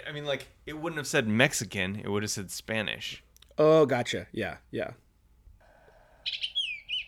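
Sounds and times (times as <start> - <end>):
speech: 0.1 - 5.0
bird calling with high chirps and whistled note: 6.2 - 7.0.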